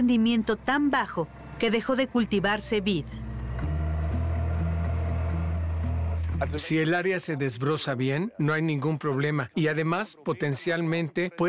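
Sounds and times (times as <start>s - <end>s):
speech: 0.0s - 3.2s, 6.4s - 11.4s
tractor engine droning while uprooting grapevines: 0.0s - 6.9s.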